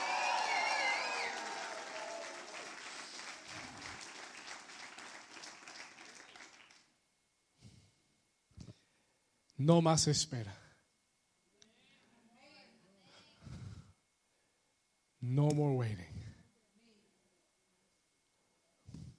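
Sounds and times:
people shouting: 0.0 - 2.6
large audience clapping and cheering: 0.0 - 6.9
speech: 9.6 - 10.6.

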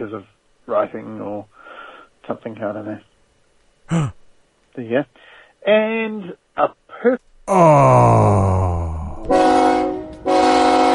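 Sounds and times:
speech: 0.0 - 1.6, 2.2 - 3.1, 3.9 - 4.2, 4.8 - 8.7
train horn blasts: 9.2 - 10.9.

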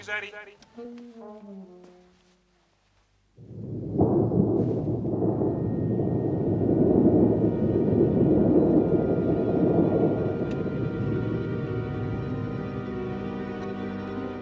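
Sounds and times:
speech: 0.0 - 1.9
foley storm sound effect with deep rolling thunder-like rumbling: 3.4 - 14.2
brief wavering tonal sound: 5.1 - 14.4.

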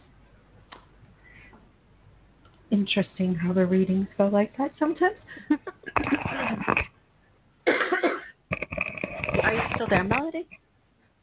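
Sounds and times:
speech: 2.7 - 6.7, 9.8 - 10.6
person coughing: 7.6 - 9.9.

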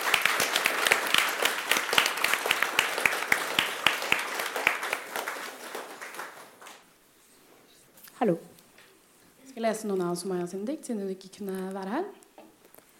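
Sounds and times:
audience applauding to welcome a performer for a poetry reading: 0.0 - 6.9
speech: 8.2 - 8.5, 9.6 - 12.2.

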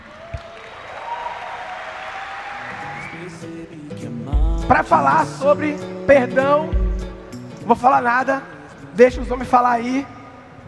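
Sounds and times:
sustained crowd applause: 0.0 - 3.6
musical tone: 2.8 - 9.5
speech: 3.4 - 6.8, 7.7 - 10.2.

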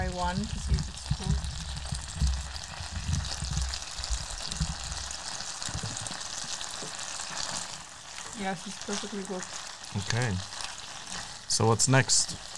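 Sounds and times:
soft low bumps and clatter: 0.0 - 5.0, 5.7 - 6.2
food frying in a pan: 0.0 - 12.5
speech: 0.2 - 1.3, 8.4 - 10.6, 11.6 - 12.5.

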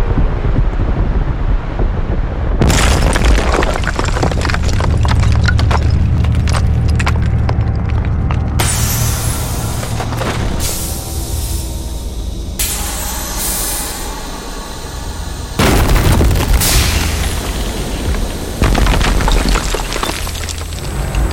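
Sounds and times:
alien tripod heavy mechanical rumble: 0.0 - 21.3
deep steady low drones: 0.0 - 21.3
hissing whining passages: 8.6 - 19.4.

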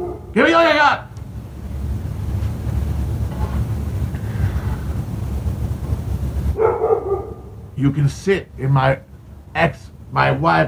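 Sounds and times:
dog barking: 0.0 - 1.2, 6.5 - 10.4
steady wind outdoors: 0.0 - 10.6
surf roar outdoors: 0.0 - 10.6
speech: 0.4 - 1.1, 7.8 - 10.6.

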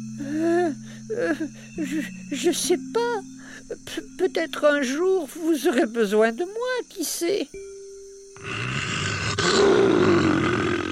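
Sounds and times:
speech: 0.3 - 7.7
lion roaring: 8.4 - 10.9.

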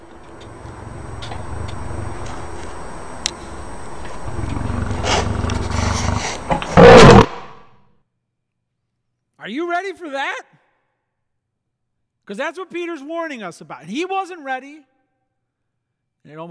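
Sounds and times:
lion growling and roaring: 0.0 - 7.6
speech: 9.5 - 10.5, 12.3 - 14.9, 16.2 - 16.4.

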